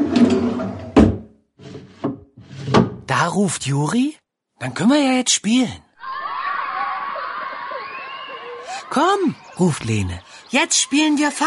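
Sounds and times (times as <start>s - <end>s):
drawer sliding open in a wooden chest of drawers: 0.0s - 3.0s
speech: 3.1s - 5.8s, 8.9s - 11.4s
laughter: 6.0s - 9.7s.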